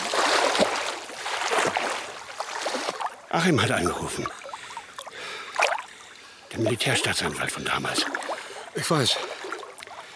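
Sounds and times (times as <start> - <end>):
water splashing as someone swims front crawl: 0.0 - 10.1
speech: 3.3 - 4.4, 6.6 - 9.3.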